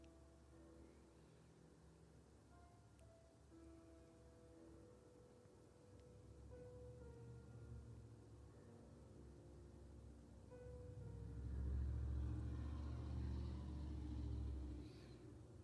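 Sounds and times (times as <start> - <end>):
steady street traffic noise: 10.7 - 15.6
heavy truck rumbling past on a street: 11.0 - 15.2.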